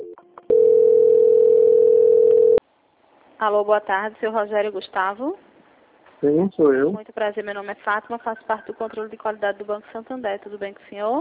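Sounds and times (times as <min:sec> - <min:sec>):
telephone tone during a call transfer: 0:00.0 - 0:02.6
speech: 0:03.4 - 0:05.4, 0:06.2 - 0:11.2.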